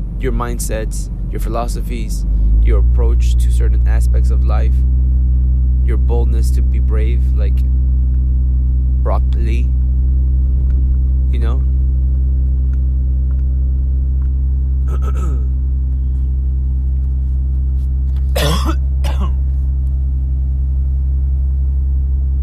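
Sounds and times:
low engine rumble: 0.0 - 22.4
speech: 0.2 - 5.2, 5.9 - 7.8, 9.1 - 9.8, 11.3 - 11.8, 14.9 - 15.4
person coughing from a tickle in the throat: 14.9 - 15.5, 18.3 - 19.4.

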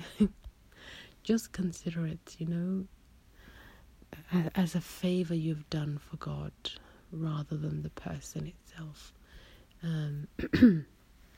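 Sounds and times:
speech: 0.2 - 0.4, 1.3 - 3.0, 4.1 - 9.2, 9.8 - 10.9
throat clearing: 10.4 - 10.9.

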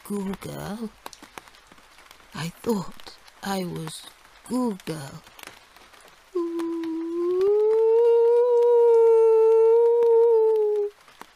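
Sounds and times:
speech: 0.1 - 1.1, 2.3 - 5.3
dog howling: 6.6 - 10.9.

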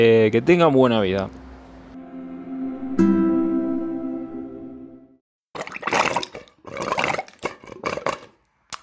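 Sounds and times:
speech: 0.0 - 1.4, 3.0 - 3.2
water pouring with a hollow ringing tone: 5.6 - 7.6.

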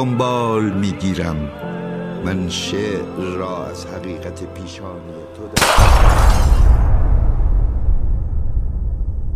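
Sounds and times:
speech: 0.0 - 6.7
bright crash of shattering glass: 5.6 - 6.9
loud sharp gunshot with deep rumbling tail: 5.6 - 9.2.

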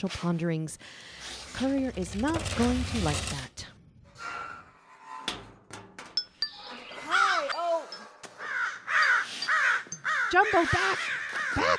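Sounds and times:
speech: 0.0 - 3.8, 10.3 - 11.7
crows cawing: 8.3 - 11.7.

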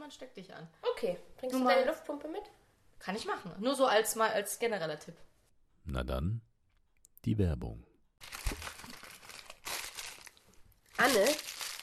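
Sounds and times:
speech: 0.1 - 6.5, 7.2 - 7.9, 11.0 - 11.6
crinkling and crunching as someone eats stage props in a theater: 8.2 - 11.8.

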